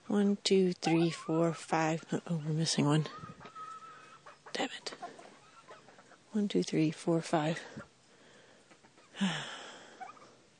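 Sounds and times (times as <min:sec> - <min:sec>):
speech: 0:00.1 - 0:03.3, 0:06.3 - 0:07.9, 0:09.2 - 0:09.6
chicken clucking: 0:00.8 - 0:02.0, 0:02.7 - 0:06.2, 0:08.7 - 0:09.2.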